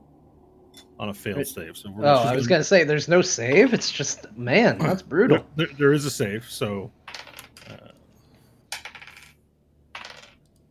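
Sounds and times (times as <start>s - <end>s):
speech: 0.8s - 7.0s
pile of dice including ten-sided dice clattering across a surface: 7.1s - 7.8s, 8.7s - 10.4s.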